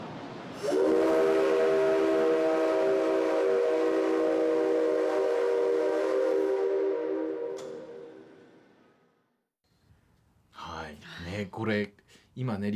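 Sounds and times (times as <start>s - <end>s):
train whistle blown by an engineer: 0.6s - 9.1s
speech: 11.6s - 12.7s.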